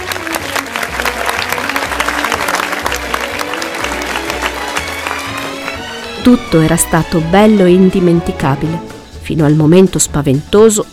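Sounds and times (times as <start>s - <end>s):
large audience applauding after a concert: 0.0s - 6.3s
speech: 6.2s - 10.9s.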